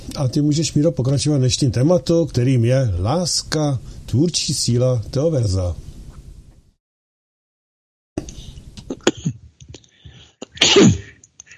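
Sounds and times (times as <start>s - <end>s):
speech: 0.2s - 5.9s
person clearing throat: 8.8s - 9.5s, 10.4s - 11.2s
person coughing: 8.9s - 9.5s, 10.4s - 11.2s.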